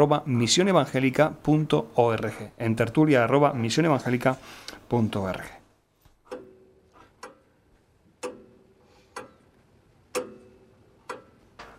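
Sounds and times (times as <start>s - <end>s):
speech: 0.0s - 5.6s
clock ticking: 6.2s - 11.7s.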